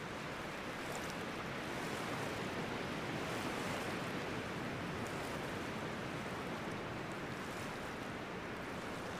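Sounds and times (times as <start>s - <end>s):
shallow water lapping along a still loch side: 0.0s - 9.1s
soft breeze blowing across a loch: 0.0s - 9.1s.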